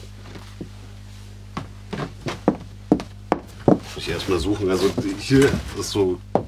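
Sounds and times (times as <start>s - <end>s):
shoe footsteps on wooden floorboards of an old farmhouse: 1.5s - 6.4s
low hum: 3.5s - 6.4s
speech: 4.2s - 6.3s.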